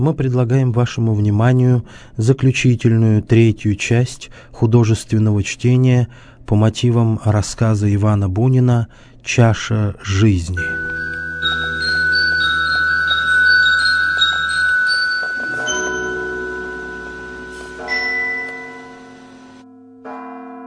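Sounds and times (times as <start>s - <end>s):
speech: 0.0s - 10.9s
church bells pealing: 10.6s - 20.6s.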